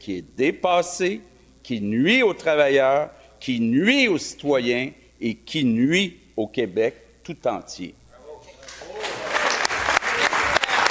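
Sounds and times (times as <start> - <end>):
speech: 0.0 - 8.0
crowd ovation of applause sound effect: 8.6 - 10.9.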